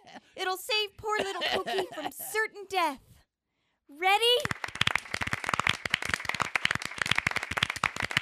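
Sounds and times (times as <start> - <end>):
speech: 0.4 - 3.1, 3.9 - 4.6
laughter: 1.0 - 2.4
audience clapping hands: 4.3 - 8.1.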